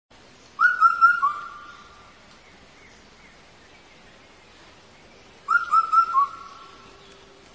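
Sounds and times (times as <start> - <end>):
faint background hiss: 0.1 - 7.5
Indian cuckoo four-note whistled phrases: 0.6 - 1.6, 5.5 - 6.7.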